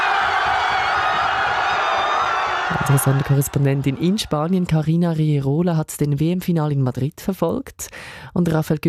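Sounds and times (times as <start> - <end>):
people whooping after the World Cup final whistle in Madrid, Spain: 0.0 - 4.7
crowd cheering after the World Cup final whistle in Madrid, Spain: 0.0 - 5.0
speech: 2.9 - 8.8.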